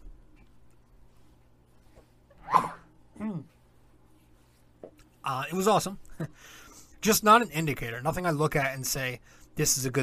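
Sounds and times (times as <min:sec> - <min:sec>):
person sneezing: 0:02.4 - 0:03.5
speech: 0:05.2 - 0:10.0.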